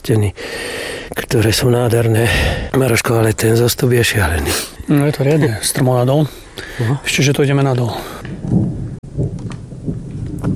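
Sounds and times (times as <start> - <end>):
speech: 0.0 - 8.8
thunder rumbling in the mountains beside high limestone cliffs: 7.9 - 10.5.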